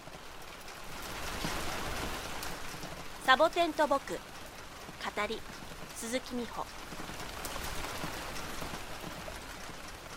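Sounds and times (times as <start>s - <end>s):
steady rain spattering on surfaces: 0.0s - 10.1s
speech: 3.3s - 4.3s, 5.0s - 6.9s.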